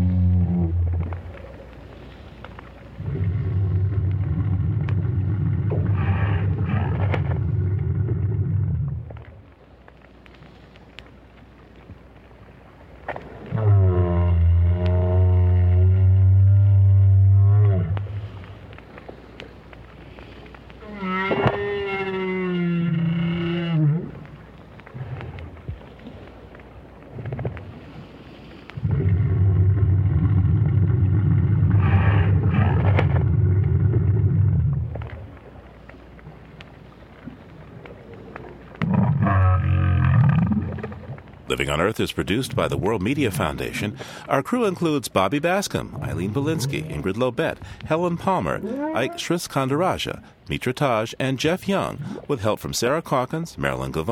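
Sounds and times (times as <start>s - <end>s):
lone adult whale calling, hydrophone recording at the bottom of the sea near Peninsula Valdez, Argentina: 0.0s - 1.7s, 3.0s - 9.2s, 13.5s - 18.5s, 20.8s - 25.6s, 28.8s - 35.2s, 37.9s - 41.1s, 48.5s - 49.4s
low steady rumble of ocean background on a hydrophone: 0.0s - 54.0s
speech: 41.6s - 54.0s.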